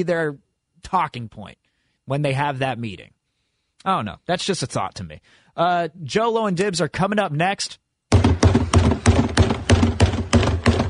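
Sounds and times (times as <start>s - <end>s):
speech: 0.0s - 3.2s, 3.8s - 7.8s
people pounding on a door: 8.1s - 10.8s.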